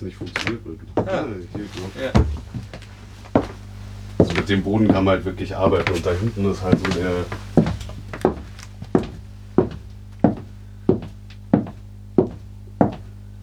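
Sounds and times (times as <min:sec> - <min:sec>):
speech: 0:00.0 - 0:02.7, 0:04.2 - 0:07.5
hollow knocking on a wooden floor: 0:00.2 - 0:03.6, 0:06.7 - 0:13.1.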